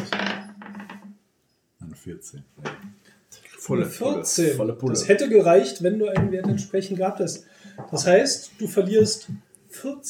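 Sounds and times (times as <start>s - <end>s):
hard twenty-sided die clattering across a tabletop: 0.0s - 1.1s
speech: 2.0s - 3.1s, 3.7s - 10.0s.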